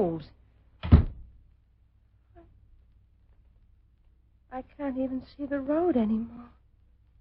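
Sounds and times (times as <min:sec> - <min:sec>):
speech: 0:00.0 - 0:01.0, 0:04.5 - 0:06.6
heavy door shutting with a thud in snowy stormy weather: 0:00.8 - 0:01.3.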